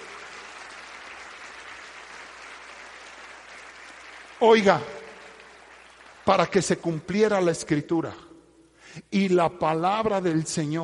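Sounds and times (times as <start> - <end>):
congregation applauding: 0.0 - 7.5
speech: 4.4 - 5.0, 6.3 - 8.3, 9.0 - 10.8.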